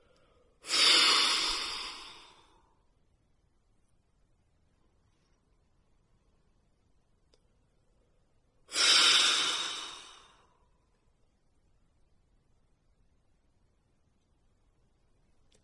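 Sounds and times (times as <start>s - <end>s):
slow full exhalations through the lips from a deep breathing exercise: 0.0s - 2.6s, 8.7s - 10.6s.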